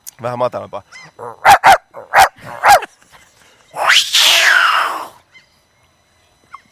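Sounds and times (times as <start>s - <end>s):
speech: 0.2s - 1.6s
person's voice imitating a drawn-out dog yelping cry: 3.8s - 5.2s.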